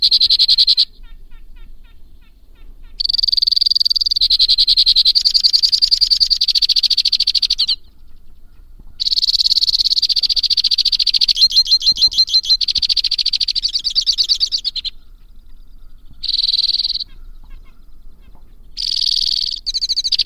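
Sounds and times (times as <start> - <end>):
white-winged crossbill singing chattering trills: 0.0 - 20.2.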